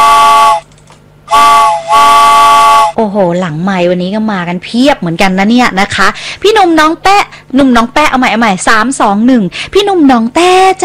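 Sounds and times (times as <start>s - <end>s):
loud shrill steam train whistle: 0.0s - 0.6s, 1.3s - 3.0s
speech: 3.0s - 10.8s.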